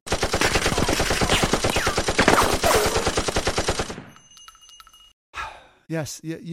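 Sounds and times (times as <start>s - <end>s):
machine gun firing a sustained burst: 0.1s - 4.2s.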